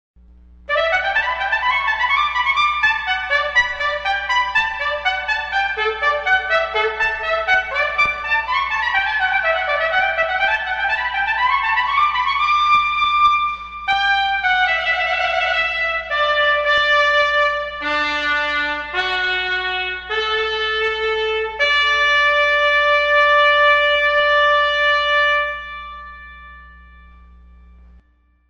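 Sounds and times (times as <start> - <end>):
two trumpets playing a fanfare: 0.7 - 26.2.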